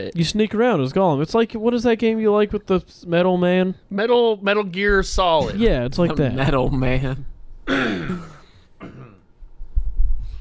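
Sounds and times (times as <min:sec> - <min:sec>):
speech: 0:00.0 - 0:08.3
person coughing: 0:07.7 - 0:09.3.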